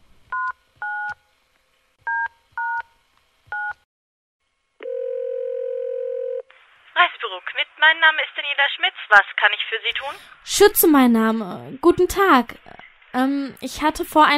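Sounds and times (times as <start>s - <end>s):
phone ringing tone: 4.8s - 6.5s
speech: 7.4s - 14.3s.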